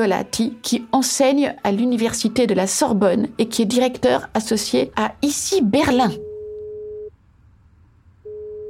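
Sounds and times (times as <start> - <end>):
speech: 0.0 - 6.3
telephone ringing tones as a call is placed: 6.0 - 7.1, 8.2 - 8.6.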